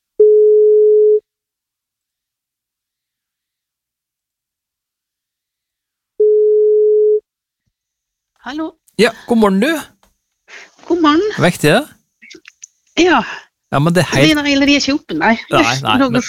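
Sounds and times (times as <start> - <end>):
telephone ringback tone on an outgoing call: 0.2 - 1.2, 6.2 - 7.2
speech: 8.5 - 9.9, 10.9 - 12.0, 13.0 - 16.2.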